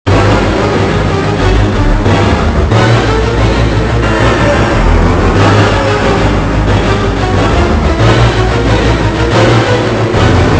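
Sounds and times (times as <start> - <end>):
suspense music: 0.1 - 10.5.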